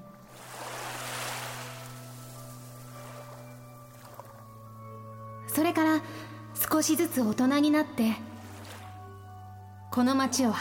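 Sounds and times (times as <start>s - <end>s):
ocean waves washing in and receding: 0.2s - 4.5s
speech: 5.6s - 8.3s, 10.0s - 10.5s.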